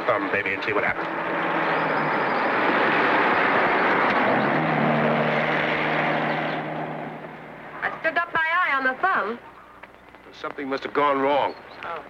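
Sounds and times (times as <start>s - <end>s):
speech: 0.1s - 1.6s, 8.9s - 9.6s, 10.3s - 12.0s
car engine and tires driving past: 0.9s - 8.1s.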